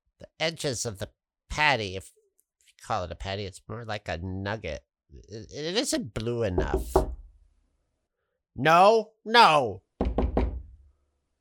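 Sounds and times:
speech: 0.4s - 2.2s, 2.8s - 7.1s, 8.6s - 9.8s
knocking on a door: 6.6s - 7.3s, 10.0s - 10.8s.

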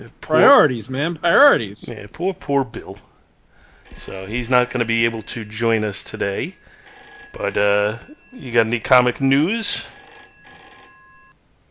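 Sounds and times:
speech: 0.0s - 3.1s, 3.9s - 6.6s, 7.3s - 10.0s
telephone ringing with electronic trill: 3.9s - 11.4s.

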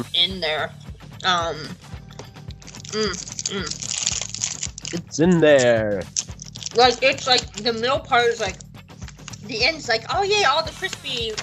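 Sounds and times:
speech: 0.0s - 2.0s, 2.9s - 8.6s, 9.5s - 11.4s
chewing a chewy caramel chocolate bar: 2.1s - 7.8s
person humming and murmuring: 4.9s - 6.0s.

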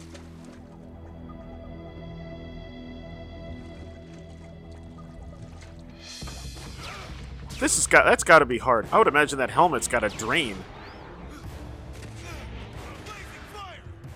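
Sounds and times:
faint liquid dripping and sloshing: 3.5s - 7.4s
speech: 7.6s - 10.8s.

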